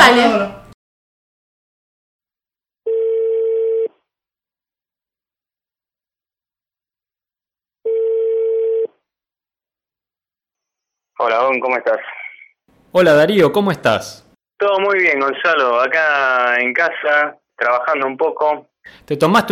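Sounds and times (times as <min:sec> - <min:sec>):
speech: 0:00.1 - 0:00.6, 0:11.2 - 0:12.2, 0:12.9 - 0:19.5
telephone ringing tones: 0:02.9 - 0:03.9, 0:07.8 - 0:08.9.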